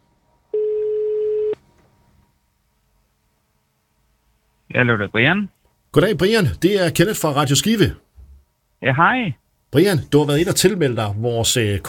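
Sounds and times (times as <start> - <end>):
outgoing phone call ringback tone: 0.6 - 1.6
speech: 4.8 - 8.0, 8.8 - 11.8.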